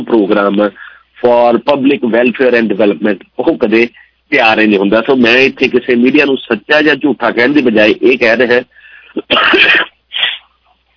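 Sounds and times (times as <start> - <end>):
speech: 0.0 - 9.9
man coughing: 9.1 - 10.5.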